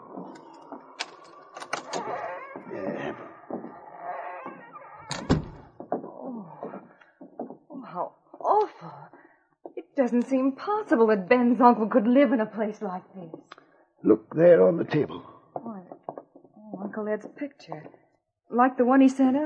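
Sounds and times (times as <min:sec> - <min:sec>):
heavy wooden door thunk: 0:00.2 - 0:06.1
door lock clicks and rattles: 0:00.3 - 0:02.4, 0:05.0 - 0:05.8
voices murmuring: 0:02.0 - 0:03.3, 0:14.1 - 0:15.2
speech: 0:10.0 - 0:13.4, 0:14.0 - 0:15.3, 0:17.0 - 0:19.4.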